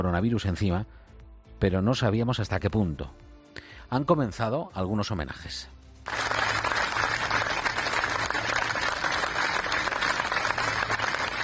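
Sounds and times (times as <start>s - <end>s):
speech: 0.0s - 6.2s
hospital staff and patients applauding: 6.1s - 11.4s.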